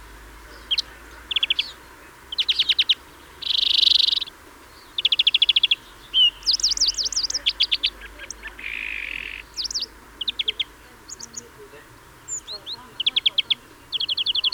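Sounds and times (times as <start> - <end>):
European greenfinch Chloris chloris calling with trills and buzzy wheeze: 0.0 - 14.5.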